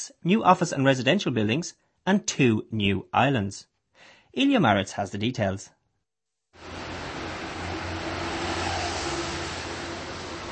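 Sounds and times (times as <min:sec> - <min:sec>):
speech: 0:00.0 - 0:05.8
afternoon street traffic rushing by: 0:06.6 - 0:10.4.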